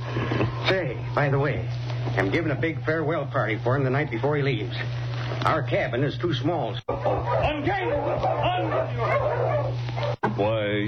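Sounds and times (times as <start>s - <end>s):
steady low hum: 0.0s - 10.8s
speech: 0.7s - 10.8s
sled dog team barking and yipping excitedly: 6.9s - 10.2s.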